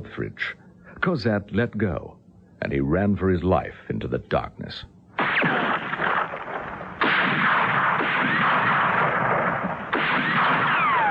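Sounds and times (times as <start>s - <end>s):
speech: 0.1s - 6.1s
heavy gunfire from several men shooting at night: 5.2s - 11.0s.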